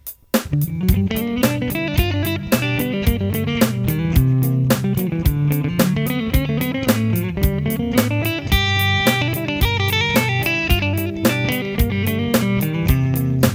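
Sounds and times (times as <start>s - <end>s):
country music: 0.5s - 13.5s.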